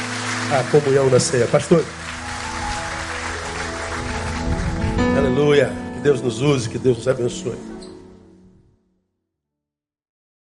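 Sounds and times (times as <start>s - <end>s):
audience clapping: 0.0s - 5.6s
sustained musical tones: 0.0s - 8.8s
speech: 0.5s - 2.0s, 5.4s - 7.8s.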